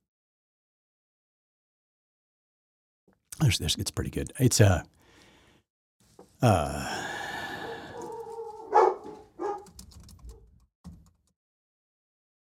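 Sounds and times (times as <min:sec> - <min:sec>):
speech: 0:03.4 - 0:05.0, 0:06.4 - 0:07.0
dog barking: 0:07.4 - 0:09.8.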